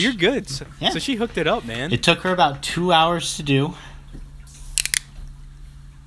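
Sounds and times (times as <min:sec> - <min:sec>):
speech: 0:00.0 - 0:03.9
cold beer can cracking open: 0:04.8 - 0:05.1.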